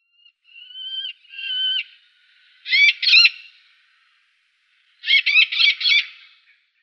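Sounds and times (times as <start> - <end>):
Eleonora's falcon Falco eleonorae calling: 0.5 - 4.2, 5.0 - 6.5.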